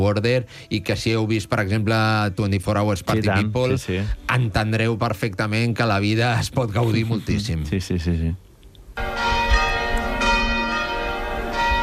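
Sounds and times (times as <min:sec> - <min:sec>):
speech: 0:00.0 - 0:08.4
church bells ringing: 0:09.0 - 0:11.8.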